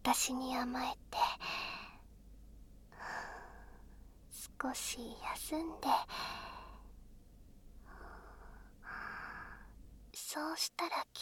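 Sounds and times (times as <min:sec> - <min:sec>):
speech: 0:00.1 - 0:01.5, 0:04.6 - 0:06.2, 0:10.4 - 0:11.2
slow deep breath taken for calm: 0:02.9 - 0:04.0, 0:06.1 - 0:06.9, 0:07.8 - 0:09.8.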